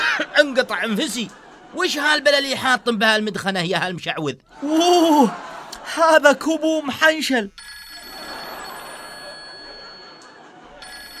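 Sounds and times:
laughter: 0.0s - 3.3s, 4.5s - 7.2s, 7.9s - 11.1s
speech: 0.4s - 7.6s
telephone ringing: 7.5s - 11.1s.

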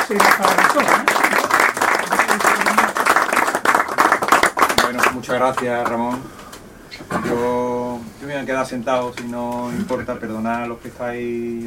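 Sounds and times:
audience applause at the close of a lecture: 0.0s - 6.0s
speech: 0.1s - 1.3s, 5.2s - 11.6s.

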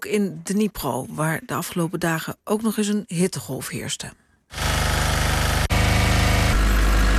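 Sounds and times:
speech: 0.0s - 4.2s
power generators running in a Ukrainian city during blackouts: 4.5s - 7.1s.

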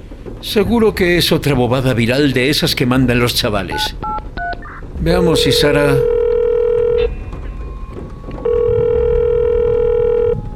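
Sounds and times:
low rumble: 0.0s - 10.5s
speech: 0.4s - 4.1s, 5.0s - 6.2s
ringback tone of a call placed to a mobile phone: 5.9s - 7.1s, 8.5s - 10.5s.

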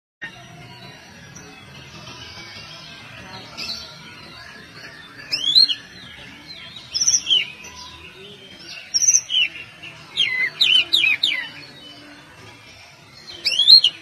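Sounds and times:
faint background birdsong: 0.2s - 13.9s
Oriental magpie-robin whistles and trills: 3.5s - 12.1s, 13.2s - 13.9s.

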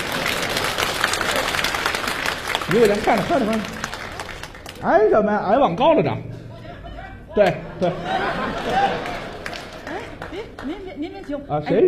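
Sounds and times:
audience applause at a live comedy stage show: 0.0s - 4.8s, 8.2s - 10.8s
speech: 2.7s - 3.8s, 4.8s - 6.3s, 7.4s - 9.2s, 10.4s - 11.8s
laughter: 6.9s - 10.8s.

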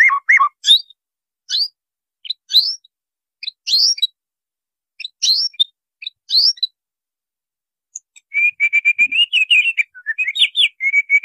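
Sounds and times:
white-rumped shama scratchy chirping calls: 0.0s - 4.2s, 5.0s - 6.8s, 7.9s - 11.2s.

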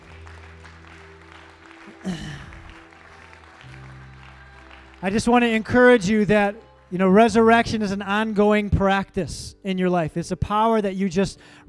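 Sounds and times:
church congregation clapping during an evening service: 0.0s - 7.9s
speech: 2.0s - 2.6s, 5.0s - 11.6s.

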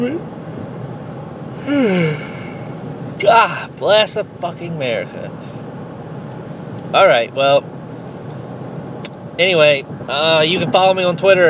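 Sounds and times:
speech: 0.0s - 0.4s, 1.6s - 2.3s, 3.2s - 5.6s, 6.9s - 7.8s, 9.4s - 11.4s
person yawning: 1.6s - 2.7s.

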